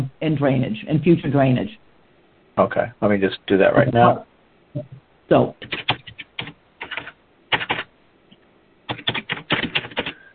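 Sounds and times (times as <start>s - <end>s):
speech: 0.0s - 1.8s, 2.6s - 5.9s
fingers typing on a computer keyboard: 5.6s - 7.9s, 8.9s - 10.2s.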